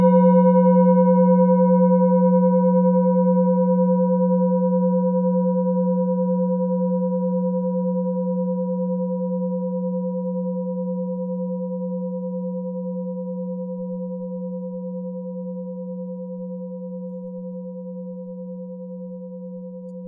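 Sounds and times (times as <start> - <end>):
planetary-tuned singing bowl: 0.0 - 20.0.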